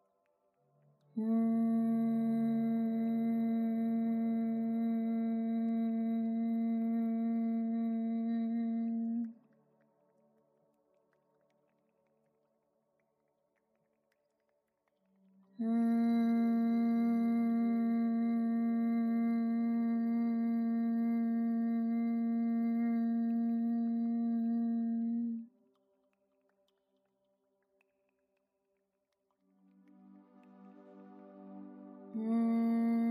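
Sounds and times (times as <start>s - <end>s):
person humming a steady buzzy note at speaking pitch: 1.1s - 9.4s, 15.6s - 25.5s, 31.2s - 33.1s.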